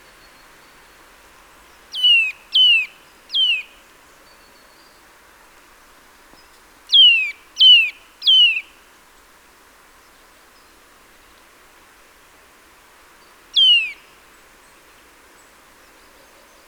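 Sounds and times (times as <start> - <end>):
Eurasian nuthatch Sitta europaea calling: 1.9 - 3.7, 6.9 - 8.7, 13.6 - 14.0.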